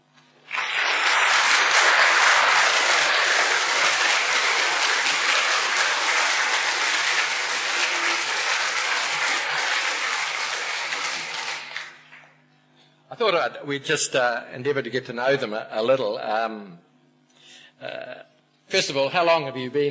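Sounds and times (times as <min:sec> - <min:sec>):
sustained audience applause from a sizable crowd: 0:00.5 - 0:12.2
speech: 0:13.3 - 0:16.9, 0:17.8 - 0:19.8.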